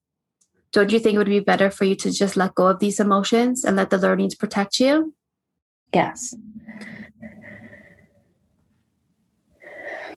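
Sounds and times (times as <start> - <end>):
speech: 0.7 - 5.2, 5.9 - 7.0
person taking a deep breath: 6.6 - 8.3, 9.6 - 10.1.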